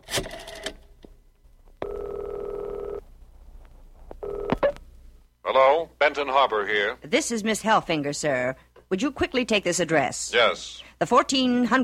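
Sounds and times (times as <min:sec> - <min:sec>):
loud steady telephone ring tone: 0:01.8 - 0:03.0, 0:04.2 - 0:04.7
speech: 0:05.5 - 0:11.8.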